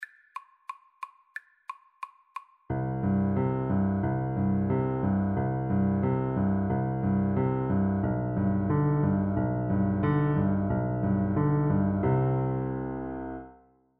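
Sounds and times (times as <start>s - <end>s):
piano duet: 2.7s - 13.7s.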